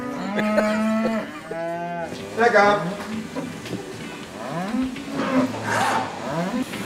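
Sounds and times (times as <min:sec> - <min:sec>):
cow mooing in a long low call: 0:00.0 - 0:02.2, 0:04.4 - 0:06.7
speech: 0:00.4 - 0:01.2, 0:02.4 - 0:03.2.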